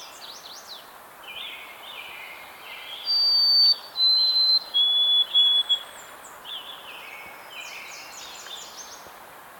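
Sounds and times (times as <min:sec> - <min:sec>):
White-throated sparrow Zonotrichia albicollis whistled song: 0:03.0 - 0:05.9.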